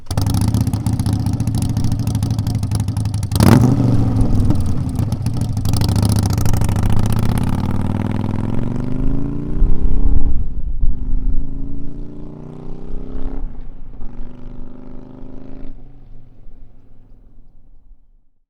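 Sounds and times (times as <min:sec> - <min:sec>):
Harley-Davidson Sportster 1200 with Rinehart slip-on exhaust pulling away: 0:00.0 - 0:18.0.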